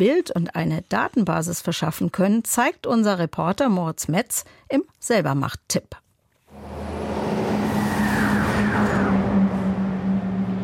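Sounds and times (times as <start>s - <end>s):
speech: 0.0s - 6.0s
truck driving past on a residential street: 6.5s - 10.6s.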